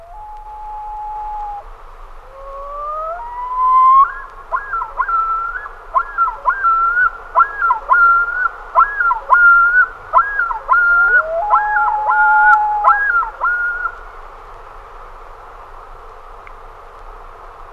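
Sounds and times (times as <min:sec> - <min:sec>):
common loon calling: 0:00.0 - 0:14.0.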